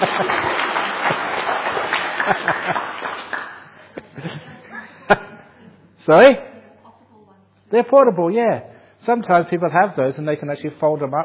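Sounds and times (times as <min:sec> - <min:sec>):
room full of people applauding: 0:00.0 - 0:03.8
laughter: 0:00.0 - 0:05.8
speech: 0:00.2 - 0:00.5, 0:02.3 - 0:02.9, 0:06.1 - 0:06.5, 0:07.7 - 0:11.2.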